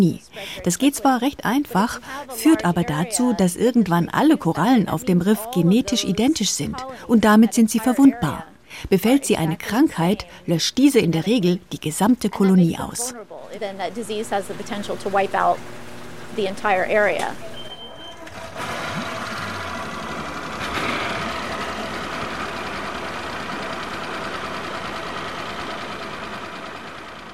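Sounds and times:
speech: 0:00.0 - 0:17.6
boat engine running: 0:00.0 - 0:27.3.

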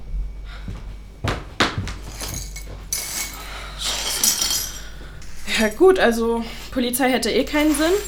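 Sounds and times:
rustling crunching shuffle of broken glass pieces: 0:02.0 - 0:04.9, 0:07.5 - 0:08.0
broken drinking glass shards clinking and scraping in a kitchen: 0:02.1 - 0:05.9, 0:07.4 - 0:08.0
speech: 0:05.6 - 0:08.0.

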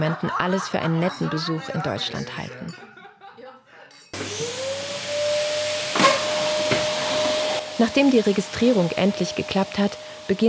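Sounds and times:
speech: 0:00.0 - 0:02.9, 0:07.8 - 0:10.4
laughter: 0:00.0 - 0:03.9
vacuum cleaner running for housecleaning: 0:04.2 - 0:10.4.

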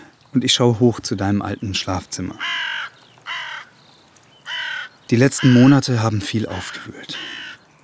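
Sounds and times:
speech: 0:00.3 - 0:02.8, 0:05.1 - 0:07.4
crows cawing at dusk on a power line: 0:02.3 - 0:07.8.

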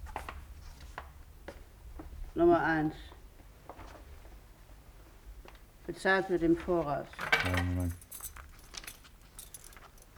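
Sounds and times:
speech: 0:02.4 - 0:03.1, 0:05.9 - 0:08.0
hotel room keys jangling: 0:07.2 - 0:10.1.

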